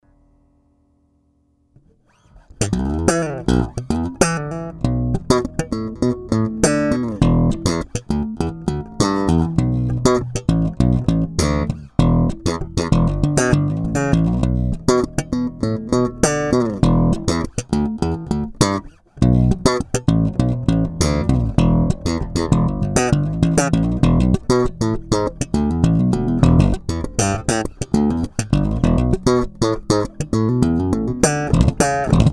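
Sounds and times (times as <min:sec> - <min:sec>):
slap bass: 0:02.4 - 0:32.3.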